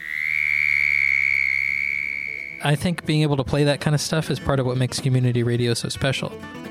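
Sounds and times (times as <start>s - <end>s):
North American frog giving a high-pitched trill: 0.0s - 2.9s
speech: 2.6s - 6.6s.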